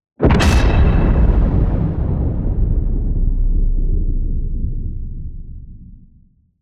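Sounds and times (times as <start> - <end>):
metal slam: 0.2 - 5.5.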